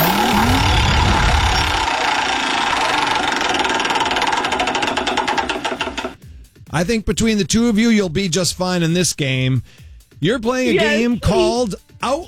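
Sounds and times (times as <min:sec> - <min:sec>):
low rumbling noise: 0:00.0 - 0:02.8
game-show prize wheel spinning and ticking: 0:00.0 - 0:06.2
speech: 0:06.8 - 0:12.2.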